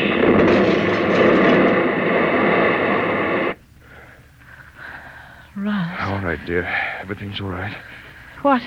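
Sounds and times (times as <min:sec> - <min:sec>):
meteor crashing down in a field: 0:00.0 - 0:03.6
speech: 0:06.4 - 0:08.6.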